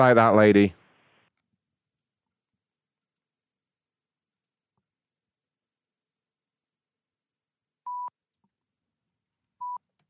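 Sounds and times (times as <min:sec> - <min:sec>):
speech: 0:00.0 - 0:00.8
electronic phone beeps: 0:07.9 - 0:08.1, 0:09.6 - 0:09.8.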